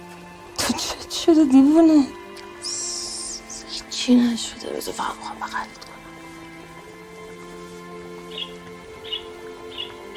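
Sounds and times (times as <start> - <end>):
speech: 0.7 - 2.8, 4.0 - 5.9
pet lovebirds chirping: 2.7 - 10.1.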